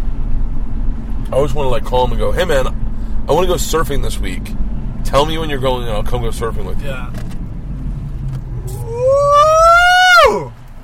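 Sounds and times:
low road rumble: 0.0s - 10.8s
speech: 1.3s - 7.3s
car engine revving: 4.0s - 10.8s.

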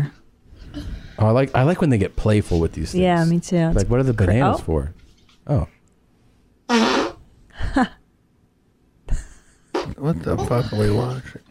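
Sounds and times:
speech: 1.2s - 5.8s, 7.8s - 8.0s, 10.0s - 11.4s
loud raspy fart from a woman in spandex: 6.7s - 7.3s, 9.7s - 10.0s.

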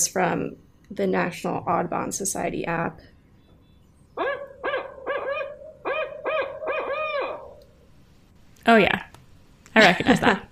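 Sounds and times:
speech: 0.0s - 3.1s, 8.7s - 9.1s, 9.8s - 10.5s
barred owl hooting: 3.4s - 7.9s
laughter: 9.8s - 10.5s.

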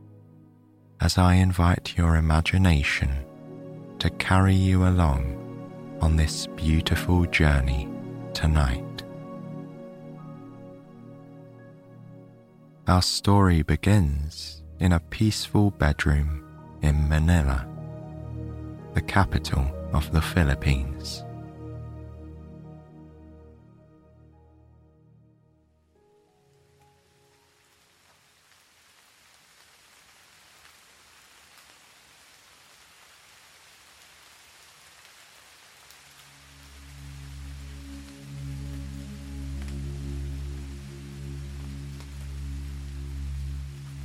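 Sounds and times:
mellow musical drone: 0.0s - 27.6s, 36.4s - 44.0s
speech: 1.0s - 3.3s, 4.0s - 5.4s, 6.0s - 8.9s, 12.9s - 17.7s, 19.0s - 21.3s
soft rain pattering outside a window: 1.0s - 21.3s, 25.9s - 44.0s.

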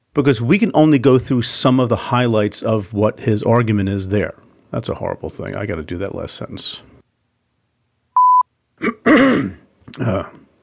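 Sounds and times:
speech: 0.2s - 6.9s, 9.2s - 10.4s
electronic beep: 8.2s - 8.5s
person clearing throat: 8.8s - 10.5s.

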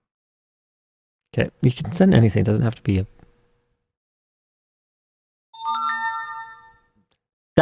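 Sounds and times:
speech: 1.3s - 3.2s
phone notification chime: 5.6s - 7.0s.

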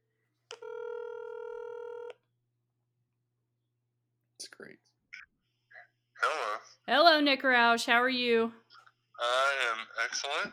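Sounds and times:
electronic phone tone of a call being placed: 0.5s - 2.2s
speech: 6.3s - 8.6s, 10.1s - 10.5s.

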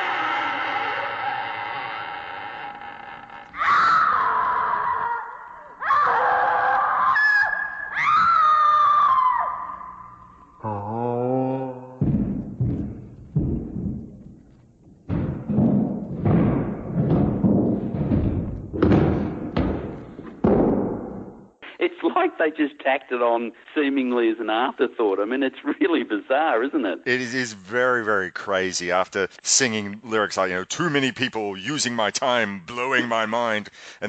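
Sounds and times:
short droning groan: 0.0s - 5.1s, 10.5s - 13.8s
horror movie moaning creature sound effect: 0.0s - 5.7s, 10.6s - 12.1s
horror movie damsel screaming sound effect: 0.0s - 10.2s
horror movie heavy booming footsteps sound effect: 12.0s - 21.5s
speech: 22.4s - 34.0s.

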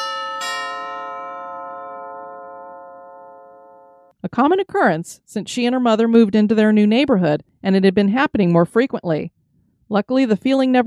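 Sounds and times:
doorbell chime at a front door ringing: 0.0s - 4.1s
speech: 4.2s - 10.8s.

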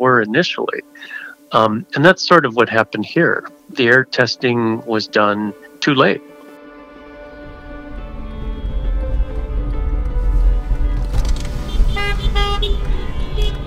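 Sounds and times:
speech: 0.1s - 6.3s
steady low engine rumble: 7.2s - 13.6s
car horns honking in a caravan of cars: 11.5s - 13.6s.

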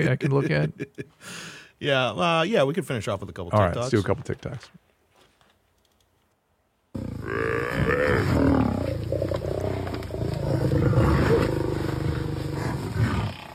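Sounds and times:
speech: 0.0s - 4.8s, 7.0s - 8.5s
lion roaring and grunting: 7.0s - 13.5s.

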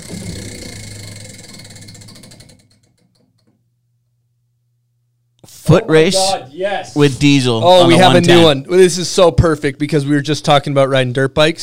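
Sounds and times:
prize wheel spinning with ticking clicks over a whirring rush: 0.0s - 3.5s
speech: 5.4s - 11.6s.

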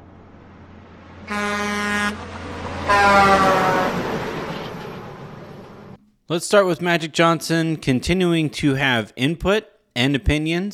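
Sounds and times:
low rumbling traffic: 0.0s - 9.0s
bus horn honking: 1.2s - 5.1s
speech: 1.3s - 3.6s, 6.3s - 10.7s.

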